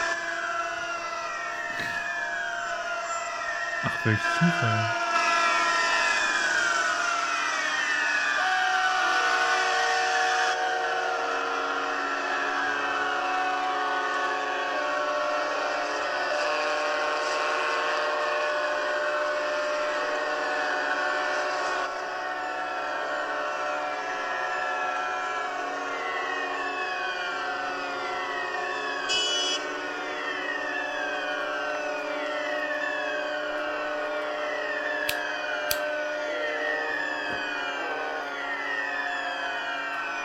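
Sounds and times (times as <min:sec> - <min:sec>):
foghorns on the water: 0:00.0 - 0:07.6, 0:08.2 - 0:40.2
many sirens across a city wailing: 0:00.0 - 0:40.2
speech: 0:03.8 - 0:05.0
car horns honking all over the city: 0:29.1 - 0:29.6.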